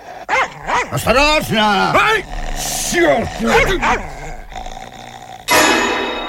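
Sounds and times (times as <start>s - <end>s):
dog growling low and menacingly: 0.0s - 6.2s
speech: 0.9s - 4.2s.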